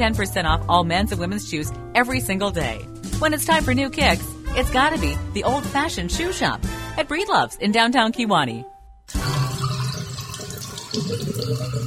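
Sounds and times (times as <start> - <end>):
speech: 0.0 - 8.7, 10.9 - 11.8
water running down a household drain: 9.1 - 11.8.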